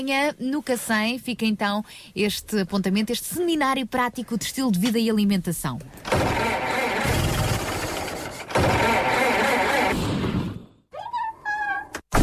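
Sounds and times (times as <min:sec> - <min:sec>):
speech: 0:00.0 - 0:06.6
car engine damaged by wrong oil struggling and rattling: 0:06.0 - 0:10.0.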